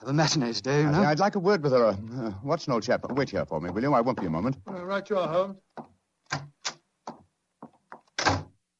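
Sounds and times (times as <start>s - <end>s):
speech: 0.0s - 6.6s
door slamming shut: 8.2s - 8.5s.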